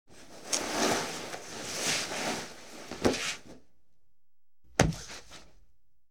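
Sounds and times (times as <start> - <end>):
corpse dragged on the ground: 0.2 - 3.5.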